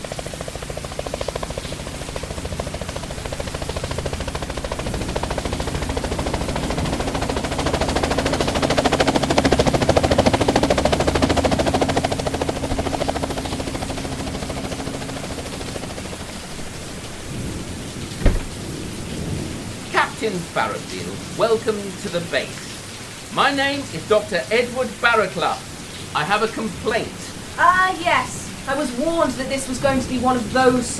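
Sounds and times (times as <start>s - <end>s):
helicopter approaching and landing: 0.0s - 30.9s
sharp thud: 18.2s - 18.6s
speech: 21.5s - 22.6s, 23.4s - 30.9s.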